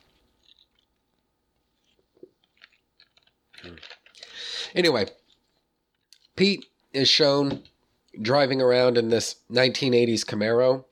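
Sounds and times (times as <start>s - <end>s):
person sipping soda: 1.8s - 4.8s
speech: 4.7s - 5.2s, 6.4s - 10.8s.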